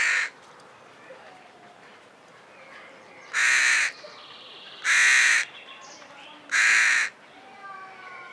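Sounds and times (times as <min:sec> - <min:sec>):
Carrion crow Corvus corone giving harsh raspy caws: 0:00.0 - 0:00.3, 0:03.3 - 0:04.0, 0:04.8 - 0:05.5, 0:06.5 - 0:07.2.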